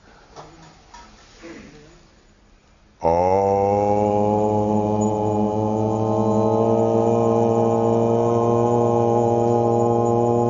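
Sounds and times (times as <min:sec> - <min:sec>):
group chanting Om during meditation: 0:03.0 - 0:10.4.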